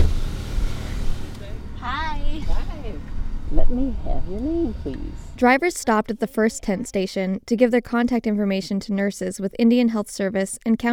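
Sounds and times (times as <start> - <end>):
car engines idling at a drive-through testing site: 0.0 - 7.0
speech: 3.7 - 10.9.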